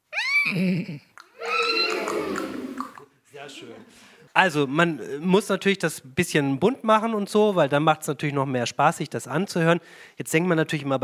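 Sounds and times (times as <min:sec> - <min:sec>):
person in a classroom imitating a horse whinnying: 0:00.0 - 0:03.0
speech: 0:00.4 - 0:01.1, 0:03.4 - 0:11.0.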